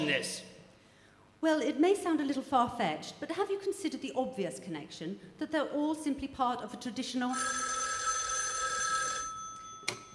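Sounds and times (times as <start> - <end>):
speech: 0.0 - 0.5, 1.4 - 7.7
telephone bell ringing: 7.3 - 10.1.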